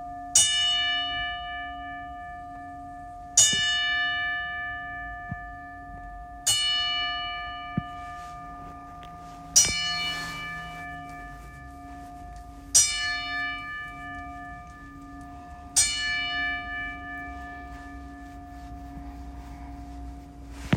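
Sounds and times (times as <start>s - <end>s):
single bell tolling: 0.3s - 20.7s.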